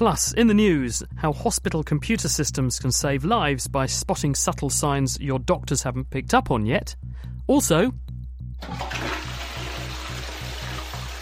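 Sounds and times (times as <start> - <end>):
speech: 0.0 - 8.0, 8.6 - 9.2
water-saving toilet with a nano coating flushing: 8.6 - 11.1.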